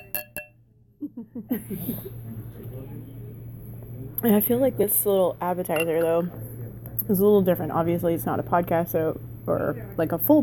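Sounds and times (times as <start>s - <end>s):
champagne glasses clinking in a toast: 0.0s - 0.6s
speech: 1.2s - 3.2s, 4.1s - 10.4s
soft murmuring voices: 1.5s - 10.4s.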